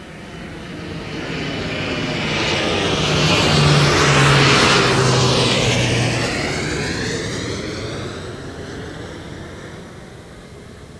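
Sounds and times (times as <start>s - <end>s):
plane flyover: 0.0s - 10.9s.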